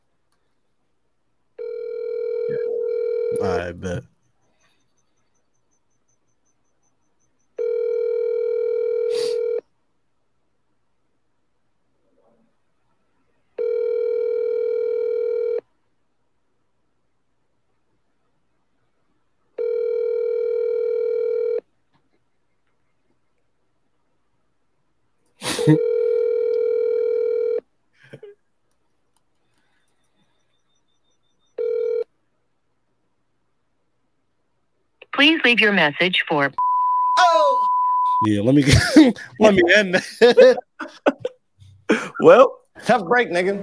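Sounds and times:
ringback tone of an outgoing phone call: 1.6s - 3.7s, 7.6s - 9.6s, 13.6s - 15.6s, 19.6s - 21.6s, 25.7s - 27.6s, 30.1s - 32.1s
speech: 3.4s - 4.1s, 35.5s - 37.5s, 38.2s - 41.2s, 41.9s - 43.6s
laughter: 38.5s - 41.4s.

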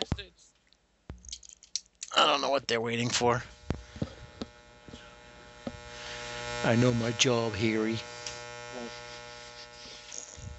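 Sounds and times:
electrical interference buzz: 2.1s - 10.5s
speech: 2.2s - 3.6s, 6.6s - 8.1s
faint voice murmuring: 8.7s - 10.2s.

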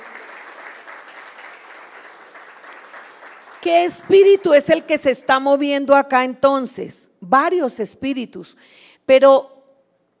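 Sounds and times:
audience applauding: 0.0s - 4.6s
speech: 3.6s - 9.5s.

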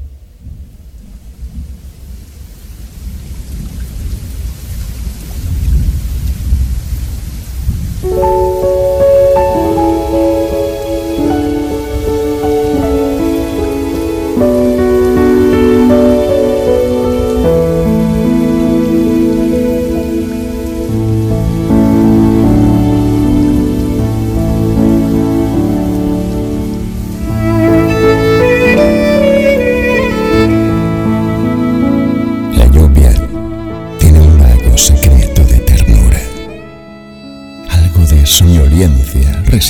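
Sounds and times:
deep rumble of thunder: 0.0s - 31.8s
rain pouring: 0.0s - 39.6s
soft melodic music: 8.0s - 39.6s.

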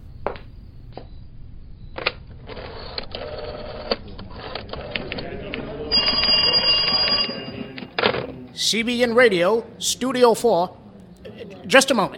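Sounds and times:
telephone ringing tone: 5.9s - 8.0s
speech: 8.6s - 10.8s, 11.7s - 12.1s.

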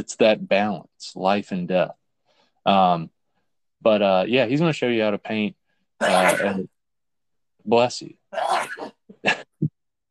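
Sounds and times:
speech: 0.0s - 2.0s, 2.6s - 3.2s, 3.8s - 6.7s, 7.6s - 9.4s
person sneezing: 6.0s - 6.6s.

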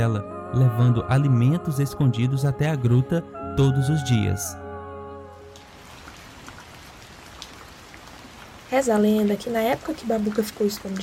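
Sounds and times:
speech: 0.0s - 4.6s, 8.7s - 11.0s
heavy rain: 5.3s - 11.0s.

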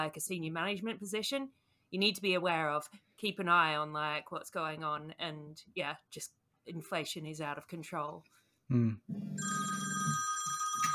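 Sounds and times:
speech: 0.0s - 9.9s
office telephone ringing with an incoming external call: 9.4s - 10.9s.

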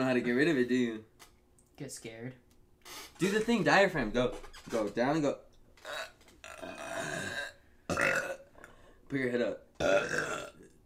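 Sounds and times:
speech: 0.1s - 1.2s, 1.8s - 6.8s, 9.1s - 10.4s
person burping: 5.8s - 8.7s, 9.8s - 10.8s.

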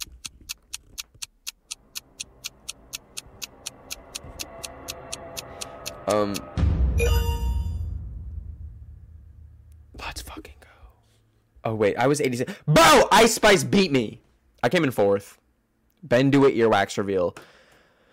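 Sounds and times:
clock ticking in a quick steady rhythm: 0.0s - 7.6s
heavy low rumble: 1.8s - 10.8s
loud burst of ringing chime-like tones: 4.1s - 8.2s
speech: 6.1s - 7.3s, 11.7s - 15.4s, 16.0s - 17.5s.

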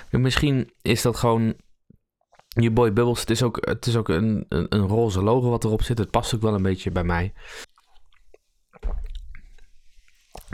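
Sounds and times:
speech: 0.1s - 1.7s, 2.6s - 7.7s
person swallowing cola: 7.7s - 9.7s.

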